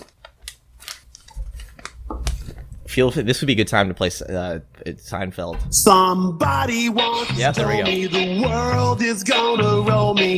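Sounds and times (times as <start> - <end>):
crisp rustling and crinkling of paper: 0.0 - 2.8
speech: 2.9 - 10.3.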